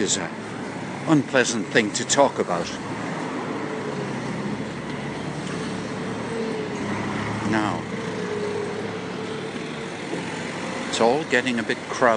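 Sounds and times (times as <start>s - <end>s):
speech: 0.0s - 3.0s, 7.5s - 7.9s, 11.0s - 12.1s
steady traffic rumble of cars on a nearby road: 0.0s - 12.1s
vehicle passing on a road: 0.0s - 12.1s.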